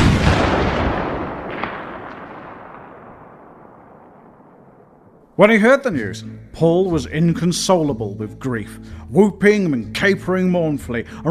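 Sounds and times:
telescopic-sighted rifle shot fired behind a grassy knoll: 0.0s - 5.4s
speech: 5.4s - 11.3s.

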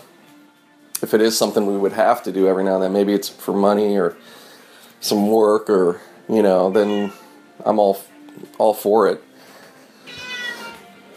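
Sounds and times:
speech: 1.0s - 4.4s, 5.0s - 9.3s
cat meowing: 6.7s - 7.3s, 10.1s - 10.8s.

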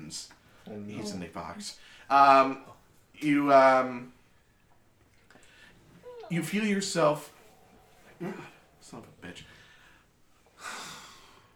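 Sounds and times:
speech: 0.1s - 4.2s, 6.3s - 7.4s, 8.2s - 9.5s
dog snoring: 6.0s - 10.1s.

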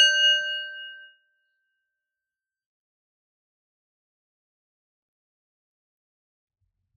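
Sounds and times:
meditation bell struck and ringing: 0.0s - 1.2s.

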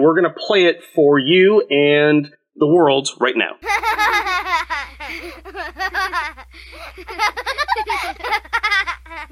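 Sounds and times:
speech: 0.0s - 9.3s
stock sound effect of a chorus of young children laughing: 3.6s - 9.3s.

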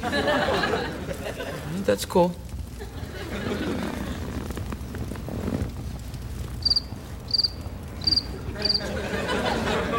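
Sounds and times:
speech: 0.0s - 1.0s, 1.7s - 2.4s
laughter: 0.0s - 1.8s, 2.7s - 4.6s, 8.3s - 9.9s
soft rustling night-time background: 2.1s - 8.0s
crickets chirping at night: 6.4s - 8.9s.

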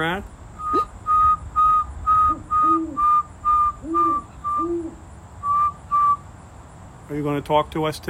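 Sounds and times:
speech: 0.0s - 0.4s, 7.2s - 8.0s
pet bird chirping: 0.6s - 6.2s.

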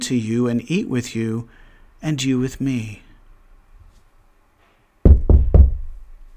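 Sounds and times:
speech: 0.1s - 3.0s
firm knocking on a wooden door: 5.1s - 5.9s.

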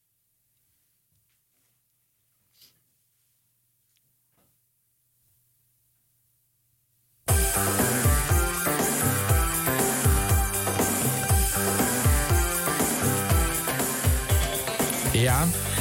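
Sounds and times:
radio emergency filler tape music with pounding bass beat and layered instruments: 7.3s - 15.7s.

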